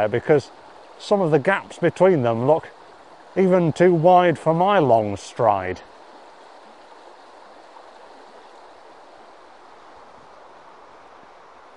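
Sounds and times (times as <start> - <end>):
speech: 0.0 - 2.8, 3.4 - 5.9
river water rushing and babbling: 0.0 - 11.7.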